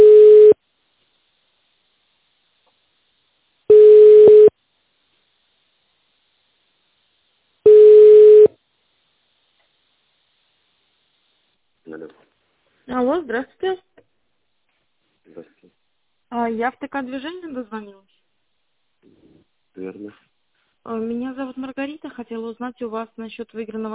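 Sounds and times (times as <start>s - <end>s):
telephone line tone beeps while on hold: 0.0s - 0.6s, 3.7s - 4.5s, 7.7s - 8.5s
speech: 16.9s - 18.1s, 20.9s - 23.9s.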